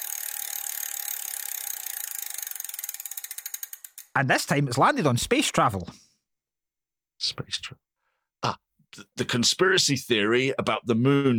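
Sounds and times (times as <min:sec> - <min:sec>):
spinning prize wheel clicking against its pointer: 0:00.0 - 0:04.3
speech: 0:04.2 - 0:06.0, 0:07.2 - 0:07.8, 0:09.2 - 0:11.3.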